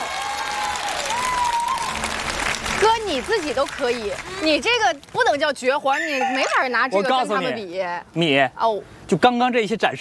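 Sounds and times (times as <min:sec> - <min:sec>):
audience applauding after a stage stunt: 0:00.0 - 0:05.0
speech: 0:03.1 - 0:09.9.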